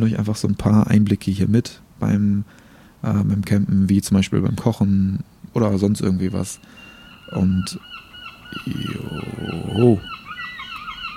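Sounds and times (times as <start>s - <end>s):
speech: 0.0s - 10.2s
seagulls calling at a campsite: 6.3s - 11.1s.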